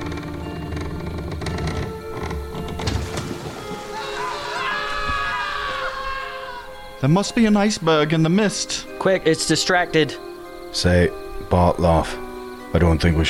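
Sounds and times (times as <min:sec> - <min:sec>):
boat capsizing into the water with heavy thuds and splashing: 0:00.0 - 0:06.7
several voices screaming and crying out together: 0:03.5 - 0:07.0
speech: 0:07.0 - 0:10.2, 0:10.8 - 0:13.2.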